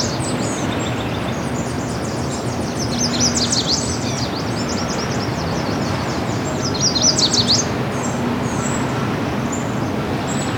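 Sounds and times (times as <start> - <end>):
road traffic noise: 0.0 - 10.5
yellow warbler singing: 0.0 - 10.5.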